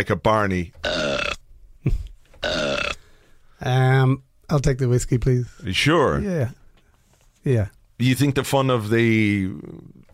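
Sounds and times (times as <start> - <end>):
speech: 0.0 - 1.0, 1.8 - 2.6, 3.6 - 6.6, 7.4 - 10.1
loud drawn-out croaky burps: 0.8 - 1.4, 2.4 - 3.1.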